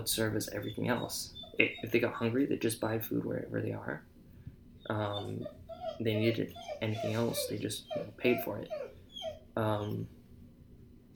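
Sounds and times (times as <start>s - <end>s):
speech: 0.0s - 4.1s, 4.9s - 8.8s, 9.6s - 10.2s
dog whining: 0.4s - 2.2s, 4.8s - 10.1s.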